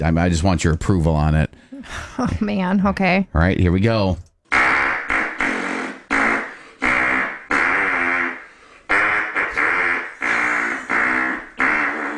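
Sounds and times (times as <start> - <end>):
speech: 0.0 - 4.3
hand farts playing the US national anthem: 4.5 - 12.1.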